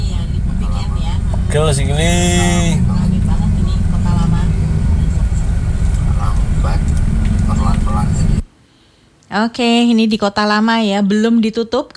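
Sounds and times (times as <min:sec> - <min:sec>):
heavy continuous road traffic rumble of engines in Kota Lama on a holiday weekend: 0:00.0 - 0:08.4
voices: 0:00.0 - 0:08.4
speech: 0:01.5 - 0:03.2, 0:09.3 - 0:11.9.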